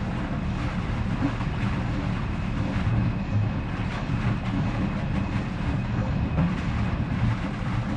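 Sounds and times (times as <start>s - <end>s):
pipe: 0.0s - 7.9s.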